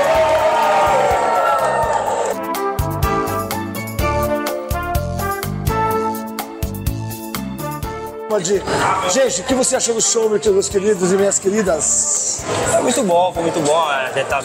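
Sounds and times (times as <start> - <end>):
live audience at a comedy show cheering and shouting: 0.0 - 2.5
upbeat music with a steady thumping beat: 2.4 - 8.2
speech: 8.4 - 14.4.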